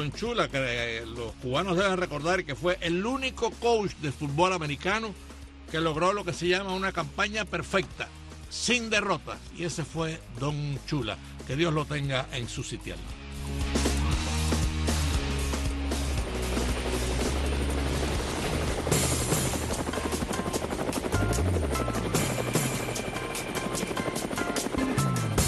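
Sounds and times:
speech: 0.0 - 13.8
low helicopter engine drone: 13.3 - 25.4
helicopter rotor blades spinning: 14.2 - 25.4.

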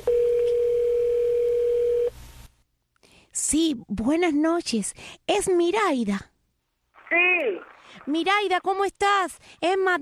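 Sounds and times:
telephone line tone as a call is placed: 0.0 - 2.1
low noise: 0.0 - 10.0
speech: 3.4 - 6.3, 7.1 - 10.0.

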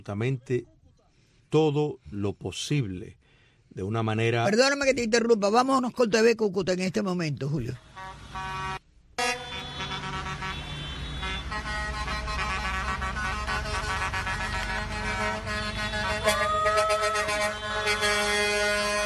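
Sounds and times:
speech: 0.0 - 0.7, 1.5 - 8.5
air horns of humanitarian aid trucks blaring at an aid collection centre: 7.8 - 19.0
low rumble of heavy vehicles: 7.8 - 19.0.

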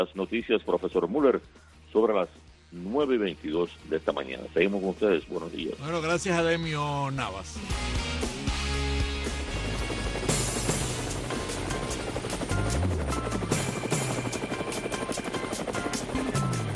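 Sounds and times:
speech: 0.0 - 8.1
helicopter rotor blades chopping steadily: 8.5 - 16.7.

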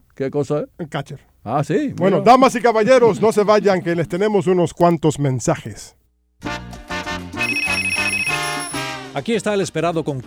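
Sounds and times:
speech: 0.2 - 6.5, 9.2 - 10.2
telephone ringing with a bright electronic ring: 7.4 - 9.1.

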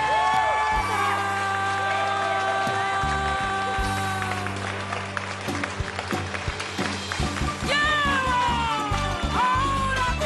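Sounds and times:
whoops and shouts from the audience: 0.0 - 4.4, 7.7 - 10.1
large audience applauding for a singer: 0.0 - 9.4.

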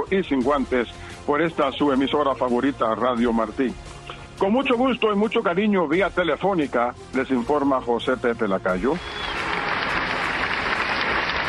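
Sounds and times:
speech: 0.1 - 9.2
applause: 9.0 - 11.4.

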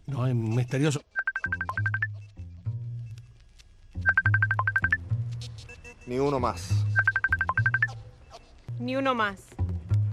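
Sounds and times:
speech: 0.2 - 1.6, 6.1 - 7.1, 8.8 - 9.5
phone's melodic ringtone with quick bright notes over humming bass line: 1.2 - 2.1, 4.1 - 5.0, 7.0 - 7.9.

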